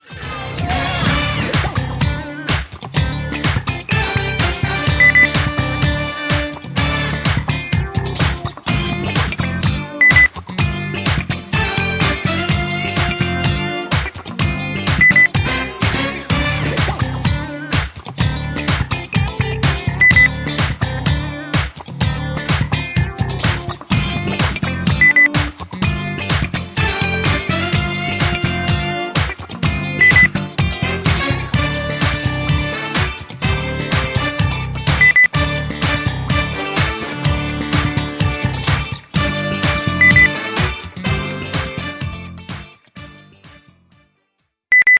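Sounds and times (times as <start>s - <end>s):
groovy music: 0.0s - 44.2s.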